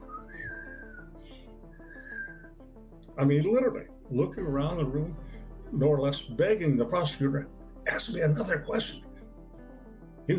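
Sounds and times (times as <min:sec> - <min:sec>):
person whistling a slow wavering tune: 0:00.0 - 0:02.5
speech: 0:03.2 - 0:09.1.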